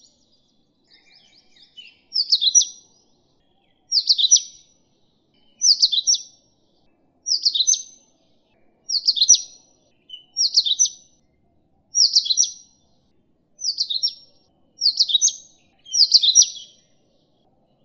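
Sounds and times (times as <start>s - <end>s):
Indian oriental magpie-robin whistling: 0.9s - 2.9s, 3.9s - 4.6s, 5.5s - 6.4s, 7.3s - 8.0s, 8.9s - 11.1s, 11.9s - 12.8s, 13.6s - 16.9s.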